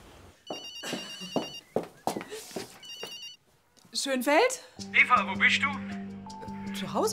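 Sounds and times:
mobile phone ringing with bright repeating electronic tone: 0.5s - 1.6s, 2.8s - 3.4s
speech: 4.0s - 6.0s, 6.8s - 7.1s.

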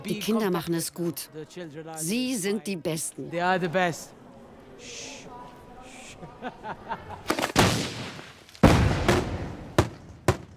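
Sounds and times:
speech: 0.0s - 4.2s, 4.8s - 5.3s, 6.2s - 8.0s
laughter: 6.0s - 7.5s
fireworks exploding: 7.3s - 10.5s
booming blasts: 7.6s - 10.5s.

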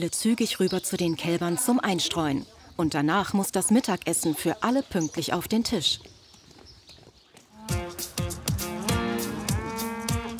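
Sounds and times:
speech: 0.0s - 6.1s
several cows mooing: 7.6s - 10.3s.

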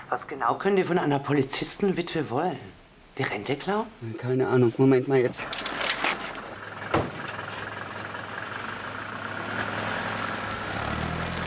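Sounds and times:
speech: 0.1s - 5.8s
taxi engine idling and driving off: 5.6s - 11.4s
sharp thump: 6.9s - 7.3s.

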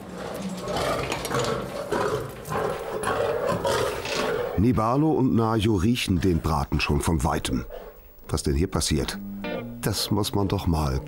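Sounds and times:
lion roaring and growling: 0.0s - 4.8s
speech: 4.6s - 11.0s.

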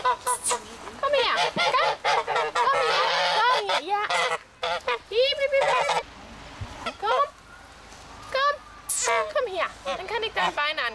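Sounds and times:
domestic geese honking: 0.0s - 6.1s, 9.0s - 10.9s.

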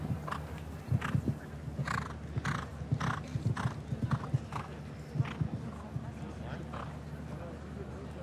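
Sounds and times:
show-jumping horse hooves clip-clopping: 0.0s - 6.9s
low hum: 0.0s - 8.2s.

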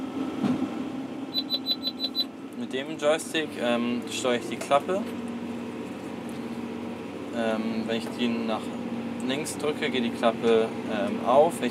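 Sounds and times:
tractor engine running with low hum: 0.0s - 11.6s
round baler warning beeps inside a tractor cab: 1.3s - 2.3s
speech: 2.7s - 5.3s, 7.4s - 11.6s.

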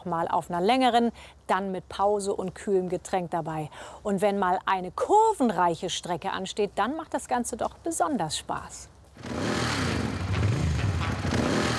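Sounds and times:
speech: 0.0s - 9.9s
motorcycle engine starting, revving and idling at a tour start: 9.2s - 11.7s.

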